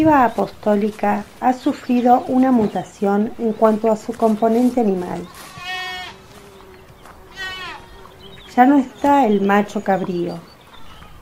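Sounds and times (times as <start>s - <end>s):
speech: 0.0s - 5.4s, 8.6s - 10.5s
sheep and two lambs bleating: 5.1s - 8.5s.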